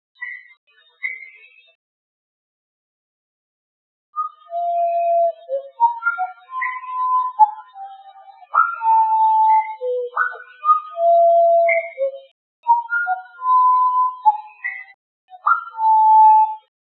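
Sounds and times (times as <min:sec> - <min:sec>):
wren singing at half speed: 0:04.2 - 0:16.5.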